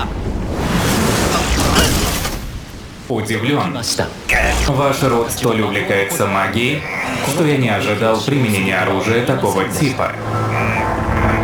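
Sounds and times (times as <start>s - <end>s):
explosion of simple explosives: 0.0s - 3.1s
speech: 3.1s - 10.5s.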